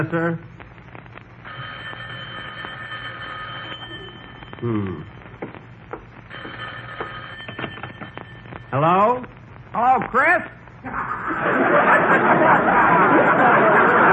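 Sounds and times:
speech: 0.0s - 0.5s, 4.6s - 5.1s, 8.7s - 14.1s
faint hiss: 0.0s - 12.4s
old telephone bell ringing in the den of a house: 1.5s - 4.6s, 6.3s - 8.5s
laughter: 10.8s - 14.1s.

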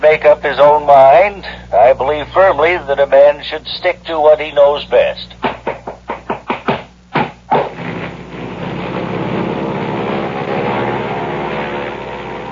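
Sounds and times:
speech: 0.0s - 5.5s
propeller airplane engine sputtering then droning during stunt flight: 7.7s - 12.5s.

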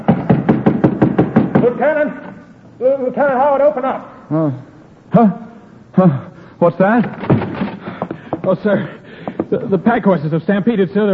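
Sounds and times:
hammer blows driving a golden nail into a wooden fort sign: 0.0s - 1.8s
speech: 1.8s - 5.4s, 6.0s - 7.4s, 8.5s - 11.1s.

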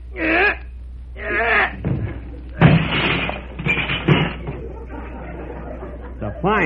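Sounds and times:
person grunting with effort while forcing a stuck door: 1.2s - 1.8s
stuck door thumping, banging and scraping as it is forced open: 1.7s - 4.8s
laughter: 4.4s - 6.6s.

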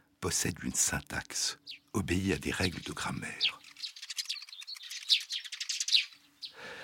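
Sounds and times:
speech: 0.2s - 3.6s
Bengalese finch singing: 1.4s - 6.8s.

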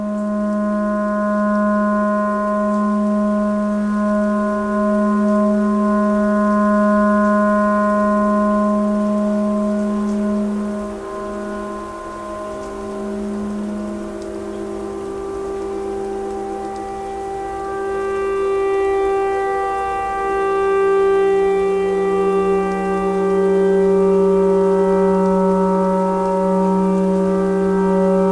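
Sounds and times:
clarinet imitating a tornado siren: 0.1s - 28.3s.

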